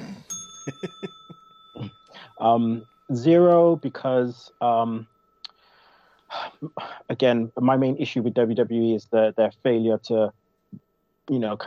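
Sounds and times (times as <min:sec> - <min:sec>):
bell strike: 0:00.3 - 0:08.2
speech: 0:00.7 - 0:01.2, 0:02.4 - 0:05.1, 0:06.3 - 0:11.6.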